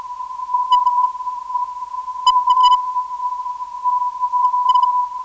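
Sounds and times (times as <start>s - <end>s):
non-directional radio beacon signal on 336.92 kHz: 0.6s - 1.2s, 2.2s - 2.8s, 4.4s - 5.0s.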